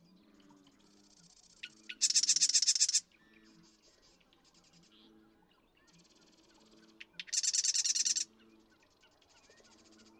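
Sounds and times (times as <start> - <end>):
Marsh Wren song: 1.2 - 3.1, 7.0 - 8.4.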